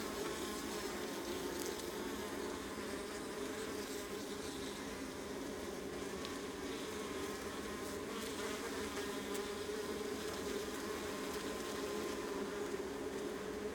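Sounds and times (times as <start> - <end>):
honey bee colony buzzing on the Adriatic coast: 0.1 - 13.7.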